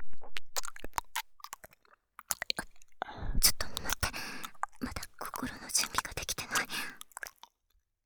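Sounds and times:
slurping and smacking: 0:00.2 - 0:07.6
wet ear-licking ASMR sounds: 0:00.3 - 0:07.5.

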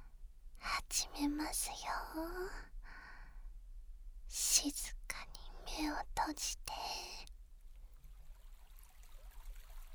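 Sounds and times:
babbling brook stream: 0:00.6 - 0:02.7, 0:04.4 - 0:07.3
speech: 0:01.2 - 0:02.8, 0:04.3 - 0:07.3.

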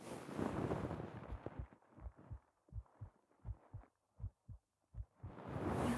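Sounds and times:
heartbeat picked up through a shirt: 0:01.2 - 0:05.8.

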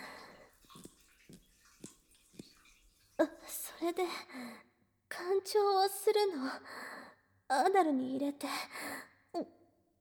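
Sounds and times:
water gushing from a shower hose with the shower head removed: 0:00.0 - 0:03.4
speech: 0:03.2 - 0:06.8, 0:07.5 - 0:09.6.

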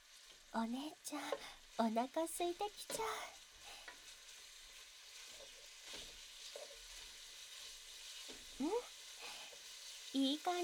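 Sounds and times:
meat frying in oil: 0:00.0 - 0:10.6
speech: 0:00.5 - 0:03.4, 0:08.6 - 0:08.9, 0:10.2 - 0:10.6
stirring knocks and scrapes: 0:03.8 - 0:08.5.

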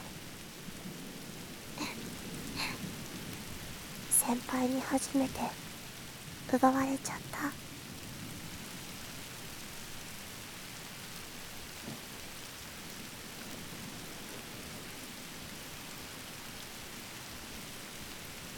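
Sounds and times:
steady dense rain striking surfaces: 0:00.0 - 0:18.5
speech: 0:04.3 - 0:05.6, 0:06.5 - 0:07.7.

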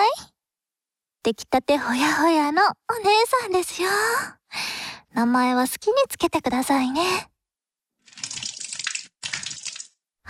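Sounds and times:
speech: 0:01.3 - 0:07.3
hot water splashing and spilling onto a floor: 0:08.1 - 0:10.0.

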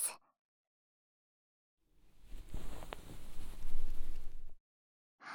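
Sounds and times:
lotion body massage for ASMR: 0:02.1 - 0:04.5.

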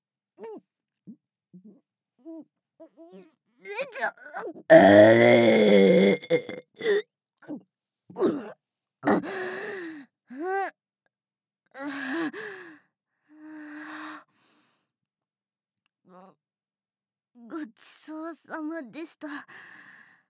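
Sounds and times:
speech: 0:02.3 - 0:06.6
gasps and sighing breaths: 0:04.7 - 0:07.0, 0:09.1 - 0:09.8
loud rumbling burp: 0:04.7 - 0:07.0
throaty burps: 0:04.7 - 0:07.0, 0:09.0 - 0:09.3.

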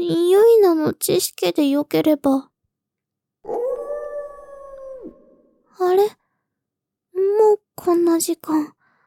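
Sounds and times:
speech: 0:00.0 - 0:02.5, 0:05.8 - 0:06.2, 0:07.2 - 0:08.8
wolf howling: 0:03.4 - 0:05.8.

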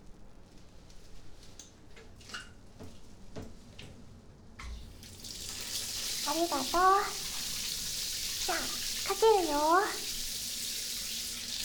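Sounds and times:
water dripping: 0:04.8 - 0:11.6
shower spray hissing: 0:04.9 - 0:11.6
speech: 0:06.3 - 0:07.2, 0:08.5 - 0:10.1.

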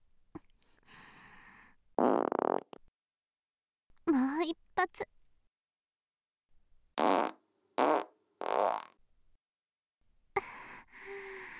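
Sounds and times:
farts: 0:02.0 - 0:02.8, 0:07.0 - 0:09.0
speech: 0:04.8 - 0:05.1.

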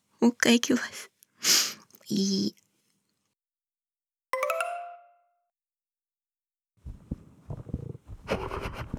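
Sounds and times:
speech: 0:00.2 - 0:01.1, 0:02.1 - 0:02.6
stomach growling: 0:06.9 - 0:08.9.

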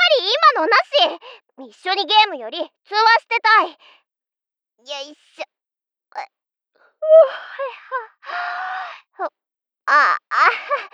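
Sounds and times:
speech: 0:00.6 - 0:04.0, 0:04.8 - 0:05.5, 0:06.1 - 0:06.4, 0:07.0 - 0:10.9
young woman yawning as she rolls over in bed: 0:07.0 - 0:07.7.

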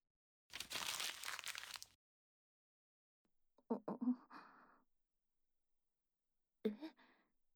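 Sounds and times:
paper letter crinkling as it is unfolded: 0:00.5 - 0:02.0.

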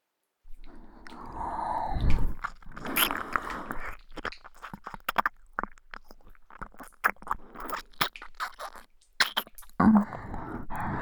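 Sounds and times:
ear licking with wet mouth noises: 0:00.5 - 0:11.0
breathy bursts: 0:00.6 - 0:04.0, 0:09.3 - 0:11.0.

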